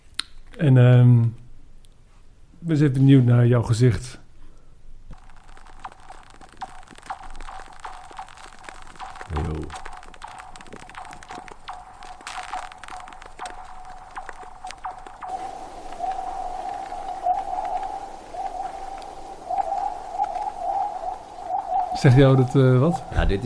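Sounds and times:
speech: 0.6 - 1.4, 2.6 - 4.2, 22.0 - 23.4
singing ice with eerie pinging and chirping tones: 5.2 - 23.4
steady high whine of singing ice: 5.2 - 23.4.

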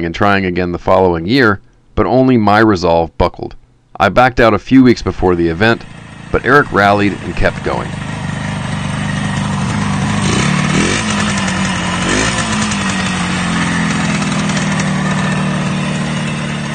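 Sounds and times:
speech: 0.0 - 8.1
Yamaha YDS motorcycle engine idling and revving: 5.3 - 16.7.

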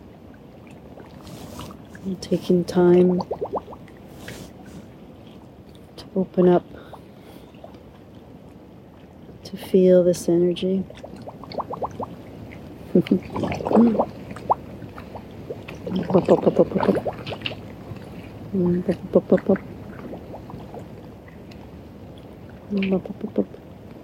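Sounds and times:
water bubbling: 0.0 - 5.2, 10.7 - 24.0
soft watery background: 0.0 - 24.0
speech: 2.0 - 3.5, 6.2 - 6.8, 9.5 - 11.1, 13.0 - 14.2, 15.9 - 17.4, 18.5 - 19.7, 22.7 - 23.6.

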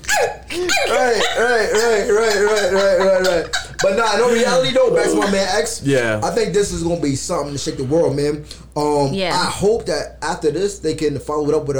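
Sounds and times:
person imitating high yappy small dog barks: 0.0 - 2.8
laughter: 0.5 - 5.9
speech: 0.5 - 11.7.

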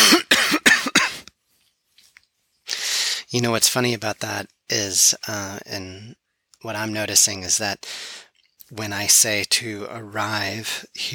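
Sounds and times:
person's harsh coughs from tension in the throat: 0.0 - 1.2
speech: 3.3 - 11.1.

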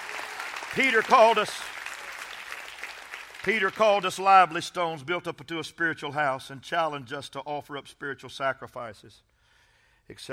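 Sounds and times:
crowd clapping: 0.0 - 4.4
speech: 0.7 - 1.8, 3.4 - 9.3, 10.1 - 10.3.

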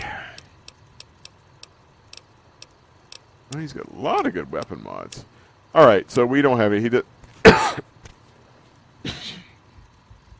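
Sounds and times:
speech: 3.5 - 7.9
harsh cough: 7.4 - 7.9, 9.0 - 9.6.

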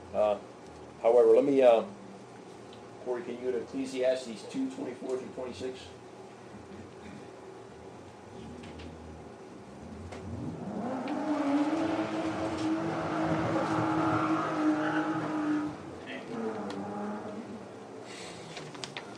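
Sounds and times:
speech: 1.4 - 2.0, 3.1 - 6.0
motorbike engine revving outside: 10.2 - 17.6.

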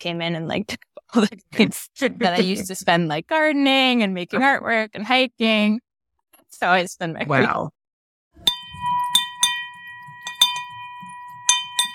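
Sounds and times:
speech: 0.0 - 5.8, 6.5 - 7.8
laughter: 1.4 - 2.9
bright bell being rung in a lobby: 8.4 - 11.9.

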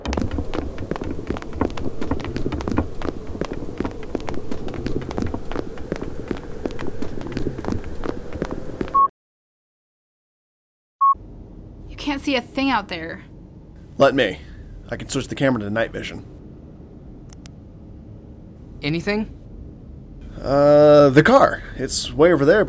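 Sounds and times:
several people walking fast down a cold hallway: 0.0 - 9.0
speech: 12.2 - 13.3, 14.0 - 16.3, 18.8 - 19.4, 20.4 - 22.6.

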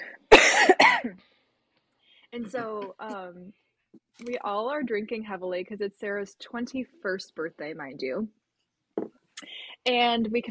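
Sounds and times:
person coughing: 0.0 - 1.2
speech: 2.4 - 8.4, 9.8 - 10.4.

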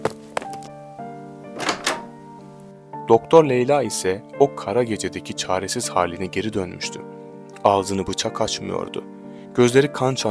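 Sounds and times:
door thudding shut: 1.6 - 2.3
speech: 3.1 - 10.2.

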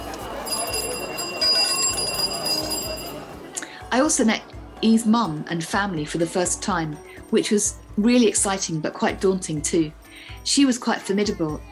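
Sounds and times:
bicycle bells ringing: 0.1 - 3.4
speech: 3.9 - 11.7.

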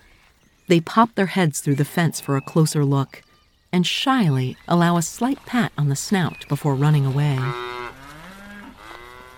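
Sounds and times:
speech: 0.7 - 7.7
calf mooing: 7.4 - 9.3.

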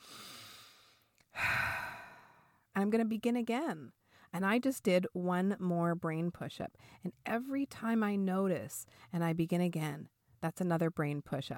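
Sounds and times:
deep breath in: 0.0 - 2.6
speech: 2.8 - 11.5.

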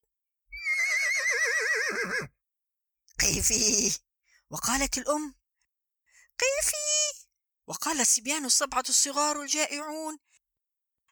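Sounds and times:
horse whinnying: 0.5 - 2.3
speech: 3.3 - 5.4, 6.4 - 10.3.

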